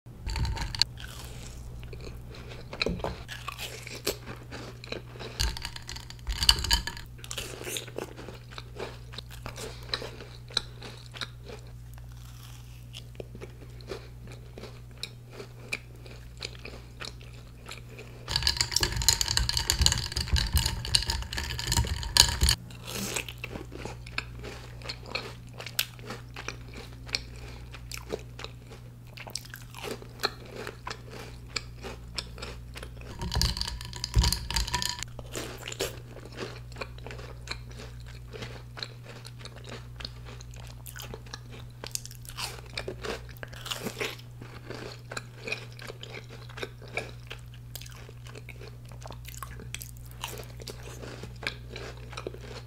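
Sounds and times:
eating cookies: 0.1 - 52.6.

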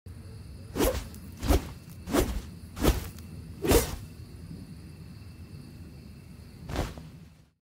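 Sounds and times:
katana sword: 0.8 - 4.0.

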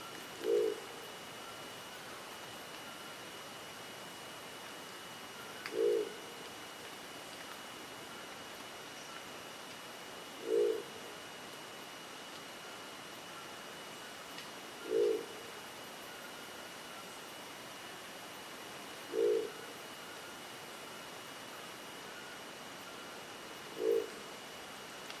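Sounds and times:
crested owl calling: 0.4 - 2.2, 5.4 - 6.2, 10.4 - 11.0, 14.8 - 15.4, 19.1 - 20.2, 23.7 - 24.2.

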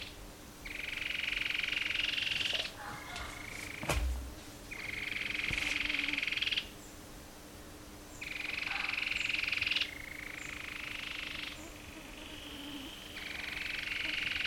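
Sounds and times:
Cherrie's antwren trilling: 0.0 - 2.8, 4.7 - 7.0, 8.1 - 14.4
sharp knocks: 3.8 - 4.4.

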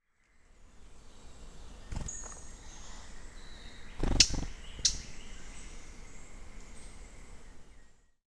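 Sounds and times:
yellow-throated scrubwren calling: 1.6 - 7.6.

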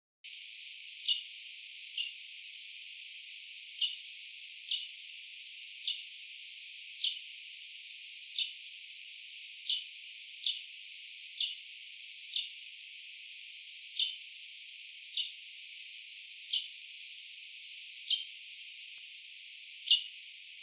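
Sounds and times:
red tanager calling: 1.0 - 2.3, 3.7 - 5.0, 5.8 - 6.1, 7.0 - 7.2, 9.6 - 10.7, 11.4 - 11.6, 12.3 - 12.6, 14.0 - 14.2, 16.5 - 16.7, 18.1 - 18.3, 19.9 - 20.1.

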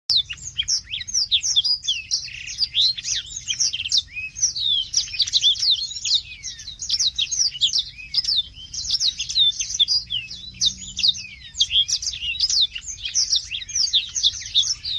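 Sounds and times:
Rüppell's warbler: 0.1 - 14.9.

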